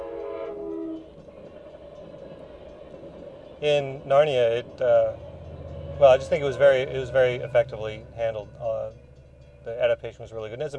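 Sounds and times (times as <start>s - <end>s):
train horn at railroad crossing: 0.0s - 1.3s, 5.1s - 10.0s
train passing railroad crossing rumble: 0.0s - 10.7s
speech: 3.6s - 5.2s, 6.0s - 9.0s, 9.6s - 10.7s.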